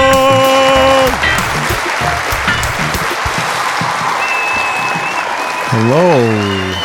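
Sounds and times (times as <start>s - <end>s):
loud dense applause from a large indoor audience: 0.0s - 6.8s
sharp sustained whistle: 4.2s - 6.8s
speech: 5.8s - 6.8s.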